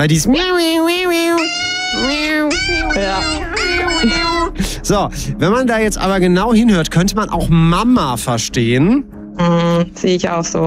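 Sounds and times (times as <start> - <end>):
speech: 0.0 - 10.6
dog whining like a cat's meow: 0.3 - 4.6.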